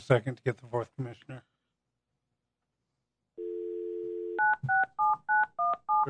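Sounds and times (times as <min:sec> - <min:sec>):
speech: 0:00.1 - 0:01.5
telephone dial tone: 0:03.4 - 0:06.0.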